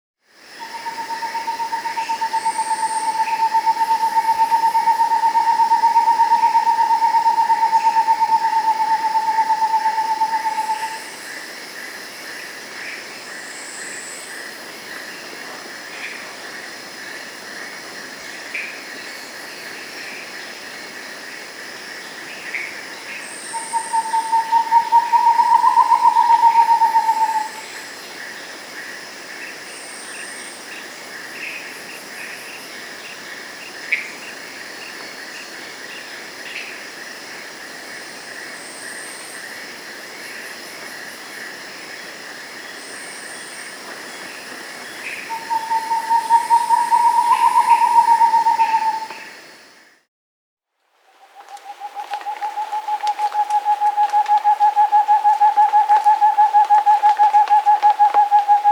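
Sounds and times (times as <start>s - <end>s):
Rufescent Screech-Owl Otus ingens calling in South America: 0.6s - 11.1s, 23.4s - 27.6s, 45.3s - 49.3s, 51.5s - 58.7s.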